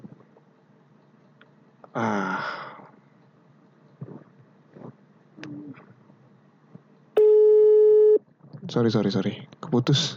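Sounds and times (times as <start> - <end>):
speech: 2.0 - 2.6, 8.7 - 10.1
telephone busy tone while redialing a call: 7.2 - 8.2.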